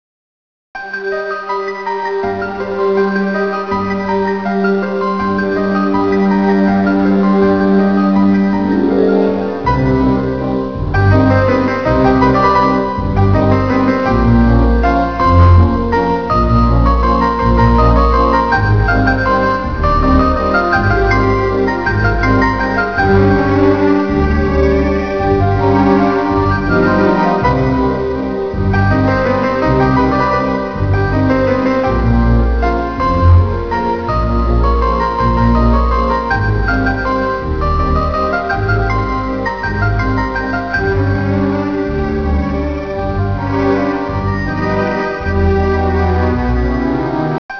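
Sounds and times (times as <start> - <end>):
waltz music loop: 0.8 - 47.5.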